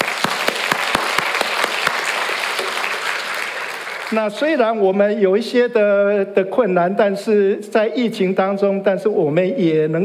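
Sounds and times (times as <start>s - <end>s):
audience applauding: 0.0s - 4.4s
speech: 4.1s - 10.0s.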